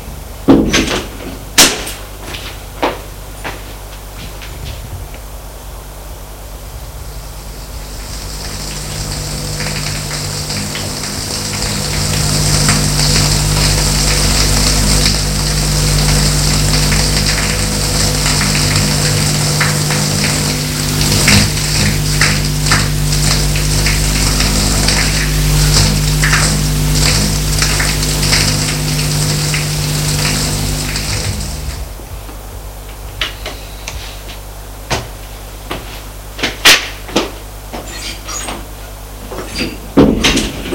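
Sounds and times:
low mechanical hum from pipes or pump: 0.0s - 40.7s
shower water running: 6.7s - 32.1s, 35.6s - 40.7s.

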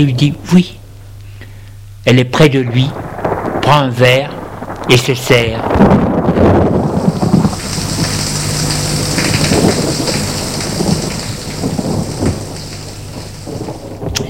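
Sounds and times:
speech: 0.0s - 0.8s, 2.0s - 3.1s, 3.7s - 6.8s
deep thunder rumbling in a thunderstorm: 2.5s - 14.2s
heavy rain in a thunderstorm: 2.8s - 14.2s.

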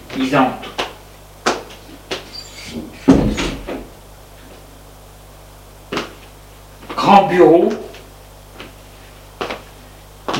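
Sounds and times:
speech: 0.2s - 0.7s, 7.2s - 7.8s
door creaking open with a thud: 2.3s - 3.9s.

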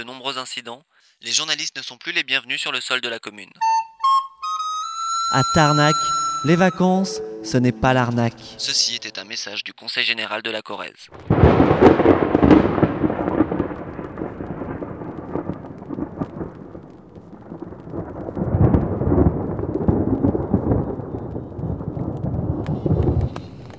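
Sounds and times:
speech: 0.0s - 3.8s, 5.3s - 12.0s
steady rain: 11.1s - 23.7s
deep rumbling thunder: 11.2s - 23.7s.

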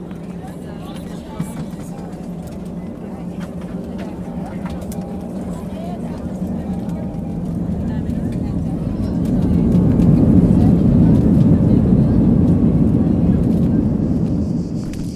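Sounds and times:
airliner engines roaring heard from inside the cabin on a flight: 0.0s - 15.1s.

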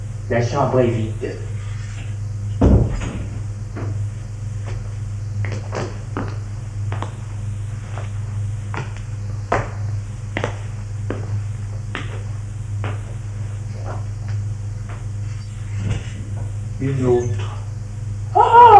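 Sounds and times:
steady low mechanical hum: 0.0s - 18.7s
speech: 0.3s - 1.6s
door opening with a thud: 2.6s - 4.0s.

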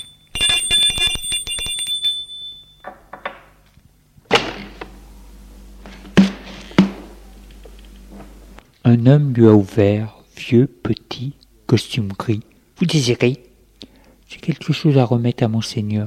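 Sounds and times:
doorbell ringing at a residence on a hillside: 0.0s - 2.9s
speech: 8.9s - 13.5s, 14.3s - 16.0s.

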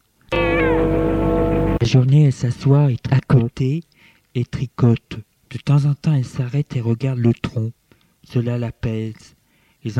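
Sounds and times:
cat meowing: 0.3s - 1.2s
speech: 1.8s - 9.9s.

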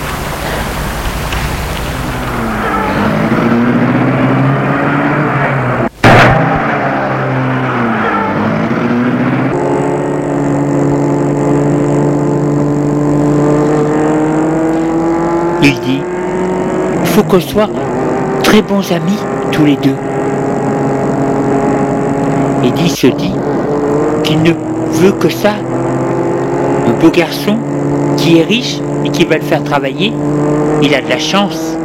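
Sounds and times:
car engine starting and running as the car drives off: 0.0s - 31.8s
speech: 17.2s - 17.9s, 18.5s - 20.1s, 22.7s - 23.4s, 24.3s - 25.8s, 27.0s - 31.8s.

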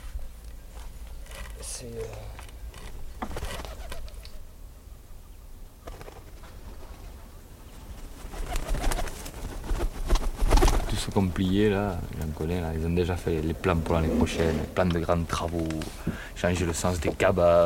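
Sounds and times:
pigeon wings flapping: 0.7s - 4.4s, 5.8s - 7.2s, 7.8s - 16.1s
pigeons cooing low: 0.9s - 17.6s
speech: 1.8s - 2.4s, 11.2s - 17.6s.

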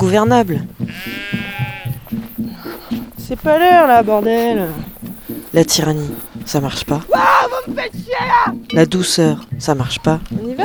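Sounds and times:
speech: 0.0s - 1.4s, 3.3s - 4.9s, 5.5s - 10.6s
ewes bleating: 0.0s - 8.3s
busy rhythmic shuffle: 0.0s - 10.6s.

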